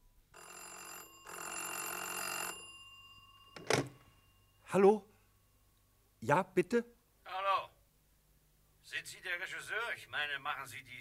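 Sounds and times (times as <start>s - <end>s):
telephone bell ringing in a studio scene of a radio drama: 0.3s - 4.7s
speech: 4.7s - 5.1s, 6.2s - 7.0s, 9.3s - 10.9s.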